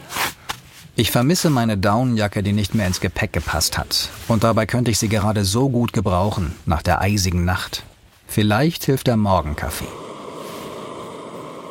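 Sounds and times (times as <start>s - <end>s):
speech: 1.0s - 10.0s
small camping gas stove roaring while heating water: 9.9s - 11.7s.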